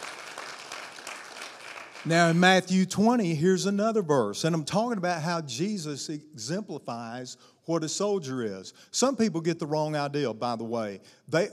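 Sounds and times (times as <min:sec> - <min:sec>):
crowd applauding: 0:00.0 - 0:02.6
speech: 0:02.0 - 0:11.5.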